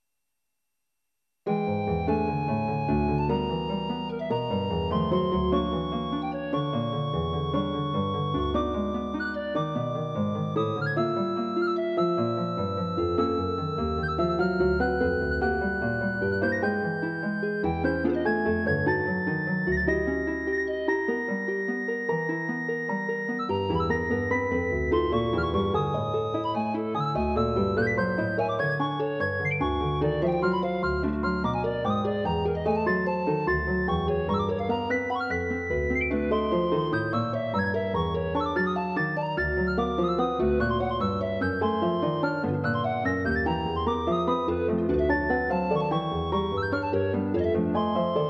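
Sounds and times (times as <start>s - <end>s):
piano in algorithmic composition: 1.4s - 48.2s
flute in algorithmic composition: 1.5s - 48.2s.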